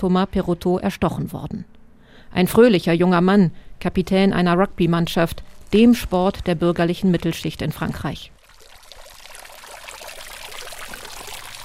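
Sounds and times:
speech: 0.0s - 1.7s, 2.3s - 8.4s
fountain splashing in a village square: 8.4s - 11.6s.

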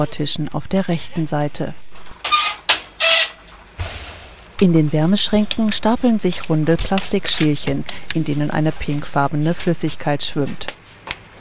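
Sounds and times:
speech: 0.0s - 1.8s, 4.6s - 10.7s
laboratory door creaking squeaks: 2.2s - 3.6s.

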